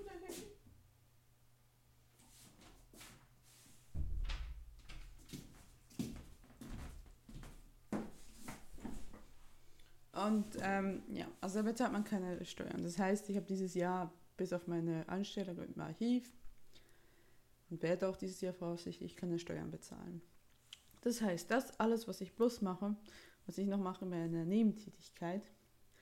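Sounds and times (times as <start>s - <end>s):
door pushed shut with a dull thump: 3.9s - 5.1s
speech: 10.2s - 16.4s, 17.7s - 20.3s, 21.0s - 25.6s.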